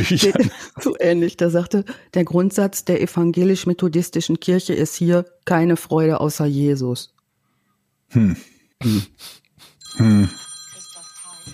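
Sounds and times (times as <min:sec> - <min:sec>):
speech: 0:00.0 - 0:07.2, 0:08.1 - 0:10.5
telephone ringing with electronic trill: 0:09.8 - 0:11.5.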